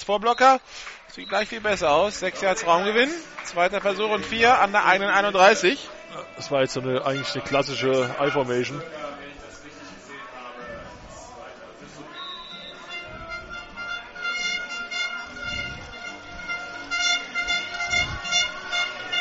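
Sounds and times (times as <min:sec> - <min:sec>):
speech: 0:00.0 - 0:09.0
murmuring crowd at an American football game: 0:00.6 - 0:19.2
plastic horns blown by fans in stadium grandstand at an American football game: 0:04.3 - 0:08.8, 0:12.1 - 0:19.2.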